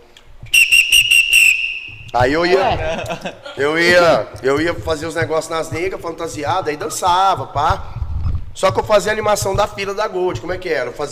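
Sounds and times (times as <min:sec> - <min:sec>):
person whistling through the mouth imitating a party whistle: 0:00.5 - 0:02.2
speech: 0:02.1 - 0:08.0, 0:08.6 - 0:11.1
laughter: 0:02.5 - 0:04.3.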